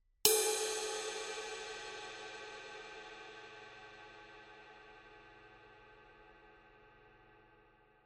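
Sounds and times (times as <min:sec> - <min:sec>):
20-inch mellow ride cymbal struck on the body: 0:00.3 - 0:05.9.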